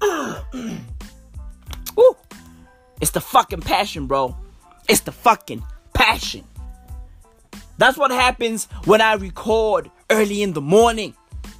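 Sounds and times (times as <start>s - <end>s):
person clearing throat: 0.0s - 0.9s
speech: 3.0s - 6.5s, 7.8s - 11.2s.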